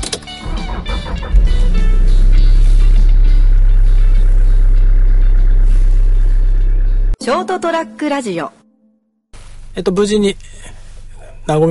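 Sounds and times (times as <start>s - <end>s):
car engine rumble inside a moving car: 0.0s - 7.2s
road noise inside a moving car: 0.4s - 7.2s
speech: 7.4s - 8.6s, 9.8s - 10.8s, 11.4s - 11.7s.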